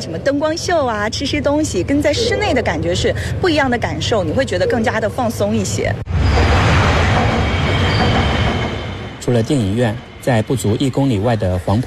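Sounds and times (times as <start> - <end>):
speech: 0.0 - 6.2, 9.3 - 11.8
Metro Line 1 train roaring past overhead on the Yangtze River Second Bridge approach in Wuhan: 1.6 - 11.8
rail clatter of a metro train on a bridge: 6.1 - 11.4.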